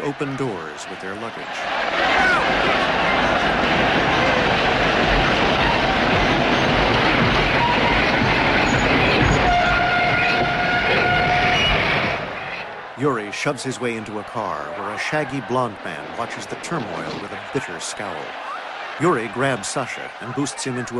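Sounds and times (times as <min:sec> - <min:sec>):
speech: 0:00.1 - 0:05.2, 0:13.0 - 0:20.9
passenger train slowing into a station, wheels and carriages rumbling and rattling: 0:02.2 - 0:12.8.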